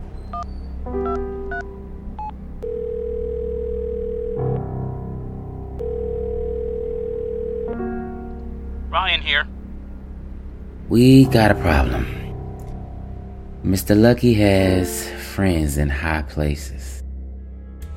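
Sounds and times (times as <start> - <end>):
low rumbling background: 0.0 - 17.8
telephone keypad beeps: 0.3 - 3.2
telephone ringing tones: 0.3 - 5.2, 5.8 - 9.4
speech: 9.0 - 9.5, 10.9 - 12.2, 13.6 - 17.0.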